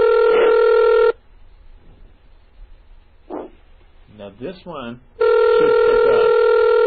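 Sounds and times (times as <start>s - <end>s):
computer modem dialing a telephone through terminal software: 0.0s - 1.2s, 5.2s - 6.8s
speech: 4.4s - 6.3s.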